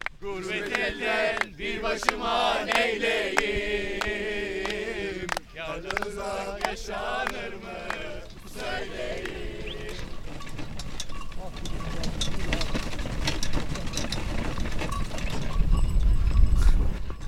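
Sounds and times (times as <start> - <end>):
people talking outdoors: 0.0 - 10.4
white-grey horse hoof clops: 0.0 - 17.2
bells on a horse-drawn troika sledge jingling across a frozen lake: 4.9 - 17.2.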